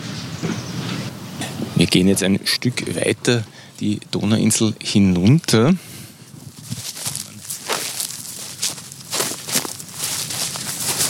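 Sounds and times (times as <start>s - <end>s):
speech: 1.8s - 5.9s
dry grass rustling and crunching underfoot: 6.0s - 11.0s.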